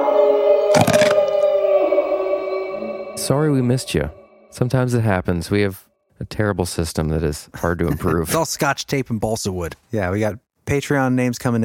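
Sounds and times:
wolf howl sound effect: 0.0s - 4.9s
speech: 3.3s - 11.6s.

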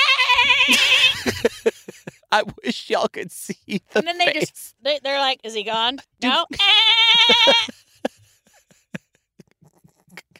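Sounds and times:
goat letting out a loud quavering bleat: 0.0s - 1.2s, 6.5s - 7.7s
laughter: 0.5s - 2.3s, 6.5s - 9.5s
speech: 2.3s - 7.8s.

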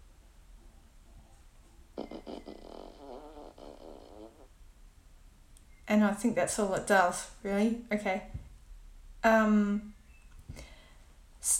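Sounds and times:
hiss: 0.0s - 11.5s
fart sound effect played by a smart speaker app: 2.0s - 4.5s
speech: 5.9s - 8.4s, 9.2s - 9.9s.

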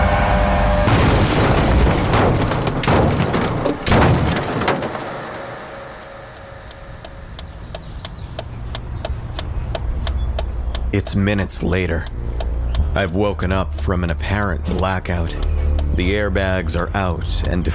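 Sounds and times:
explosion-like crash during a car wreck: 0.0s - 6.1s
sharp hit: 0.0s - 7.4s
low hum: 0.0s - 17.7s
faint regular clicks: 6.0s - 13.0s
speech: 11.0s - 12.2s, 13.0s - 17.7s.

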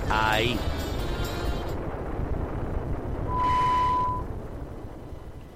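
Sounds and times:
speech: 0.1s - 0.7s
loud rumbling explosion blast: 1.7s - 5.4s.

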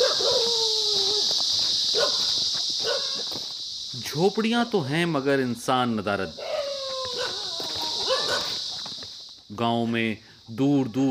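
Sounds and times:
dogs barking and yelping in a distant village: 0.0s - 1.3s, 1.9s - 3.2s, 6.3s - 8.7s
steady high-pitched hiss: 0.0s - 11.0s
speech: 4.1s - 6.5s, 9.5s - 11.0s.

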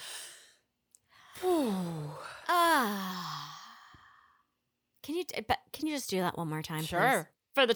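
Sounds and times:
deep breath in: 0.0s - 4.5s
long voiced sighs sliding down in pitch: 1.2s - 4.4s
speech: 5.3s - 7.7s.

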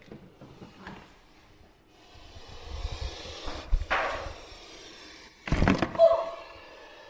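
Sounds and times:
snake striking the microphone: 2.4s - 5.9s.

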